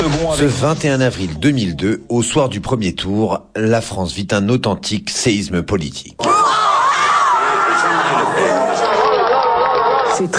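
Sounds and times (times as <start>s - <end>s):
speech: 0.0s - 6.4s, 10.2s - 10.3s
large crowd shouting on election night: 6.2s - 10.3s.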